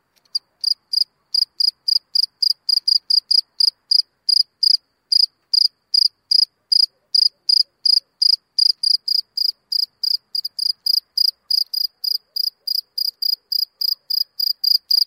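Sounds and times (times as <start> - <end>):
field cricket chirping in a meadow: 0.2 - 15.0.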